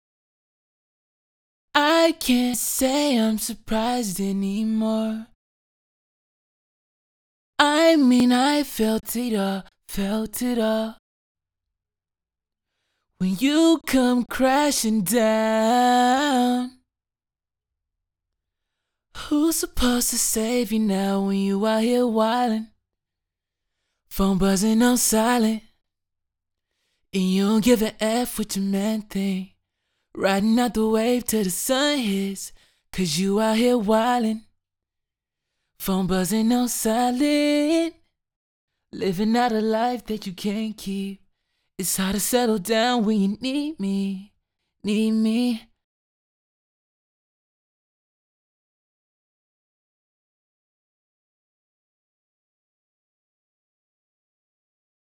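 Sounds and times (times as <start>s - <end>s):
raw lead vocals: 1.8s - 5.4s, 7.6s - 11.0s, 13.2s - 16.8s, 19.2s - 22.8s, 24.1s - 25.7s, 27.1s - 29.5s, 30.2s - 34.5s, 35.8s - 38.0s, 39.0s - 41.2s, 41.8s - 45.7s.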